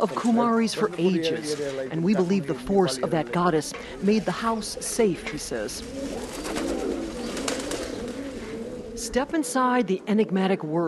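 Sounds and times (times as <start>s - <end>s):
speech: 0.0s - 6.8s, 9.0s - 10.8s
pigeons cooing in the courtyard of an old household: 0.7s - 9.4s
pigeons fluttering in a courtyard: 3.9s - 9.2s.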